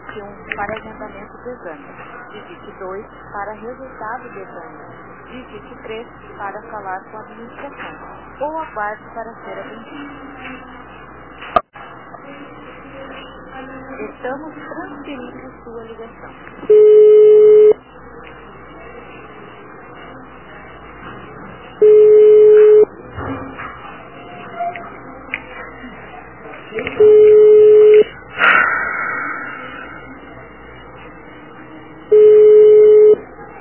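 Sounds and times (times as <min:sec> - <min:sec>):
speech: 0:00.2 - 0:10.8, 0:14.0 - 0:17.1
telephone ringback tone of an unanswered call: 0:16.7 - 0:17.8, 0:21.8 - 0:22.9, 0:27.0 - 0:28.0, 0:32.1 - 0:33.2.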